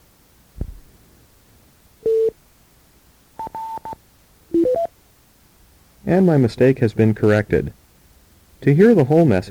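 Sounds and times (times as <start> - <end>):
low thump: 0.6 - 0.9
speech: 6.1 - 7.8, 8.6 - 9.5.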